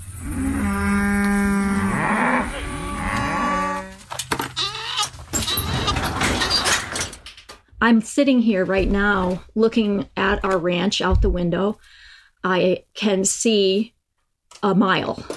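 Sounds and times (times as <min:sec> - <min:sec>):
beef cattle mooing on a ranch: 0:00.2 - 0:05.1
rustling outdoor ambience from the cattle herd: 0:01.3 - 0:06.6
speech: 0:07.8 - 0:15.3.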